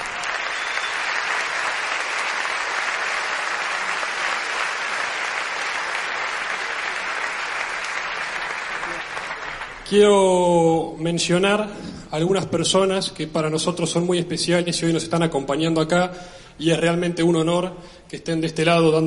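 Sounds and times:
sustained applause from a sizable audience: 0.0s - 9.9s
speech: 9.9s - 19.0s.

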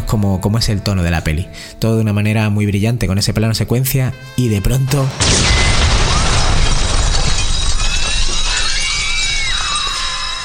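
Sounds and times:
speech: 0.1s - 5.8s
debris crashing and shattering: 5.0s - 10.4s
explosion in a film scene: 5.1s - 9.8s.

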